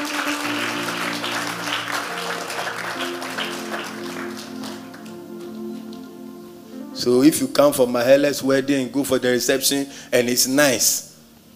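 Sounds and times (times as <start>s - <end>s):
audience clapping during a sermon: 0.0s - 6.0s
sustained organ or keyboard chords: 0.0s - 11.5s
speech: 7.0s - 11.1s.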